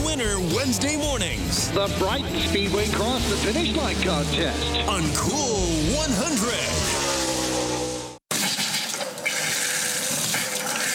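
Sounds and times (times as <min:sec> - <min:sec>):
speech: 0:00.2 - 0:07.0
running water hissing and whining through a pipe: 0:08.3 - 0:10.9.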